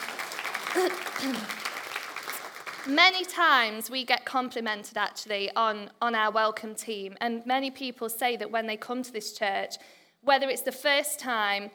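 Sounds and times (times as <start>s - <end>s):
crowd clapping for a church welcome team: 0.0s - 3.4s
speech: 0.8s - 1.6s, 2.8s - 11.7s.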